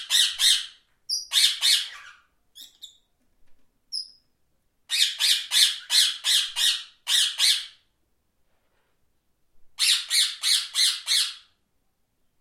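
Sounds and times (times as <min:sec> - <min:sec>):
parrot squawking: 0:00.0 - 0:03.0, 0:04.9 - 0:07.8, 0:09.8 - 0:11.5.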